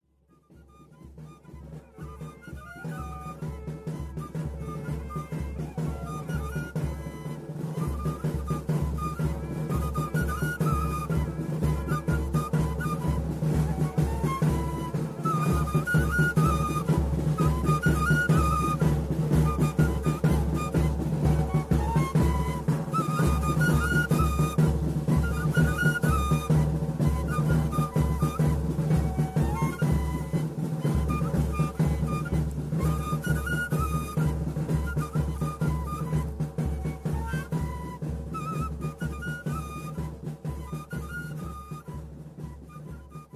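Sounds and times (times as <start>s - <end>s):
pasacalle music for horses: 0.3s - 43.3s.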